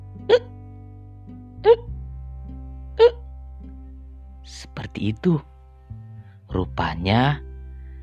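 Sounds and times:
voice imitating choking hiccup-like gulps: 0.3 - 0.5, 1.6 - 1.9, 3.0 - 3.2
speech: 5.0 - 5.5, 6.6 - 7.4.

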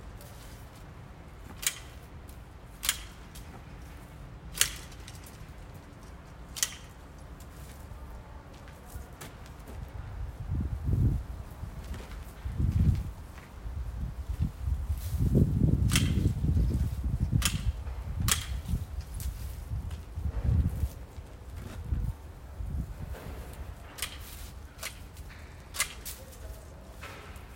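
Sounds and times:
branches and leaves rustling: 0.0 - 27.5
pruning shears snipping a tree in a backyard: 0.2 - 7.9, 14.9 - 20.1, 23.2 - 27.5.

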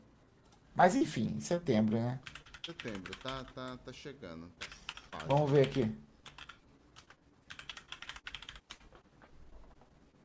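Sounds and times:
speech: 0.8 - 6.1
noisy computer keyboard typing: 1.8 - 3.8, 4.6 - 9.0.

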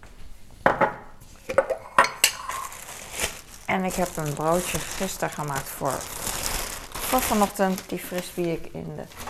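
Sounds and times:
glass jars of peanut butter and apple syrup clinking on a counter: 1.5 - 2.9
speech: 3.7 - 6.2, 7.1 - 9.2.

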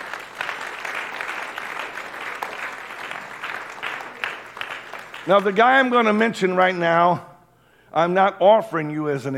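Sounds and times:
congregation clapping hands in applause: 0.0 - 6.8
speech: 5.2 - 7.3, 7.9 - 9.3.

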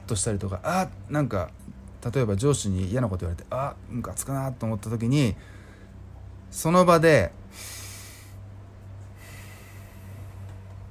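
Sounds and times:
speech: 0.1 - 5.6, 6.5 - 7.8
slow airy calming breathing in a 3-3-6 pattern: 5.4 - 6.2, 7.4 - 10.9.

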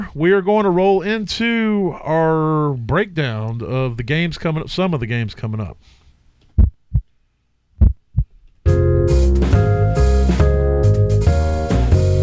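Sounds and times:
speech: 0.1 - 6.0
heartbeat sound effect: 6.6 - 7.1, 7.8 - 8.4
loud music: 8.7 - 12.2.

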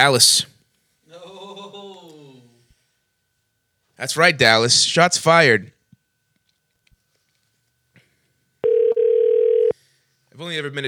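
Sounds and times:
speech: 0.0 - 0.5, 4.0 - 5.8, 10.4 - 10.8
telephone intercept tone for a misdialed number: 8.6 - 9.7.

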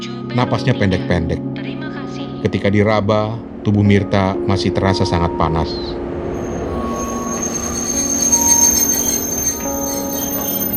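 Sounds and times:
speech: 0.0 - 1.8, 2.4 - 6.0
deep rumble of the railcars: 3.3 - 10.7
train brakes squealing as train pulls in: 6.2 - 10.7.

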